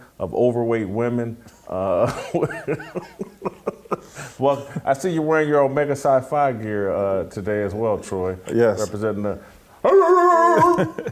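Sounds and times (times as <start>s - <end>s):
speech: 0.2s - 10.0s, 10.6s - 11.1s
laughter: 2.0s - 4.9s, 10.3s - 11.1s
man imitating a dog howling and barking: 9.8s - 11.0s.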